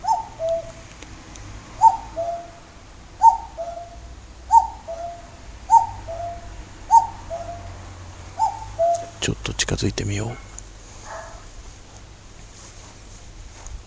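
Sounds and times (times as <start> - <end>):
common cuckoo calling: 0.0 - 9.5
speech: 9.3 - 10.5.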